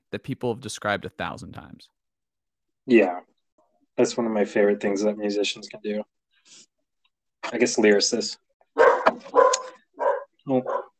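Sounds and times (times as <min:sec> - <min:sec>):
speech: 0:00.1 - 0:02.0, 0:02.9 - 0:03.3, 0:04.0 - 0:06.7, 0:07.5 - 0:08.4, 0:10.4 - 0:10.8
dog barking at a house as someone arrives: 0:08.7 - 0:10.9.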